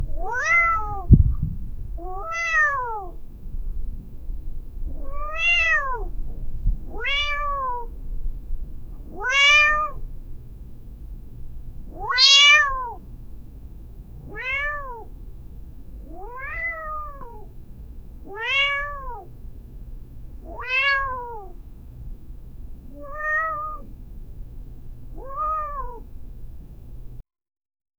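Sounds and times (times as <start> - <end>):
pet cat meowing: 0.1 - 1.2, 2.0 - 3.3, 4.8 - 10.6, 11.8 - 27.2.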